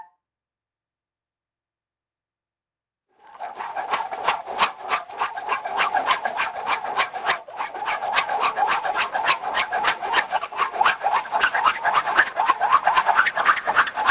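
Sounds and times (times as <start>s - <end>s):
rhythmic airy spinning colander swooshes: 3.3s - 14.0s.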